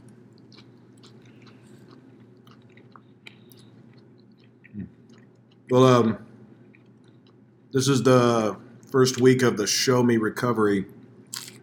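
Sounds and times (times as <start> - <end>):
chewing and biting on tacos at a meal: 0.0 - 7.7, 10.9 - 11.6
speech: 5.7 - 6.2, 7.8 - 11.0.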